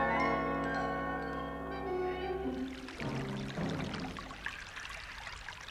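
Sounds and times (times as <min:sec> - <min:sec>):
water pouring onto a person's body during a bath: 0:00.2 - 0:05.7
water splashing: 0:02.1 - 0:05.7.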